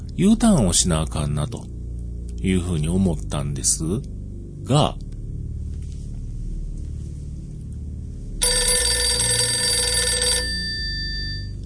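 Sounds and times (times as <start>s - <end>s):
speech: 0.2s - 1.8s, 2.4s - 5.1s
telephone ringing with an incoming call: 8.4s - 11.6s.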